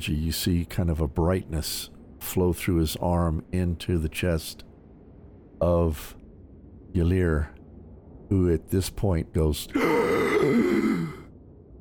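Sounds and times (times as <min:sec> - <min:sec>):
speech: 0:00.0 - 0:04.7, 0:05.6 - 0:06.2, 0:06.9 - 0:07.6, 0:08.3 - 0:10.8
voiced strained rasping gasp for breath: 0:09.8 - 0:11.3.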